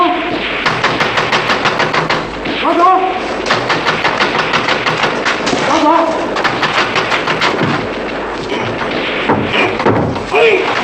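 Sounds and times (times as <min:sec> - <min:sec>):
gunfire barrage in a firefight: 0:00.0 - 0:10.8.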